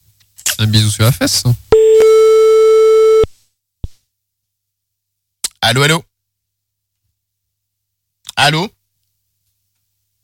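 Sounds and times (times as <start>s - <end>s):
speech: 0.6s - 1.6s, 5.7s - 6.1s, 8.4s - 8.8s
telephone busy signal after redialing a number: 1.8s - 3.3s.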